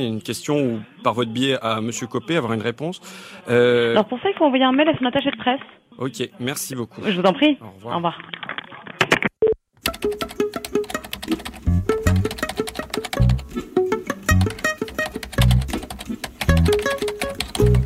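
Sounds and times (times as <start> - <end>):
speech: 0.0 - 8.4
typing an email on a computer keyboard: 9.8 - 17.8.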